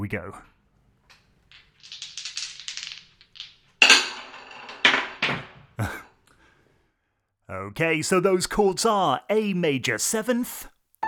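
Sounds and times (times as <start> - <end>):
speech: 0.0 - 0.6, 7.5 - 10.8
12-sided die and two 6-sided dice rattling across a hard surface: 1.1 - 5.6.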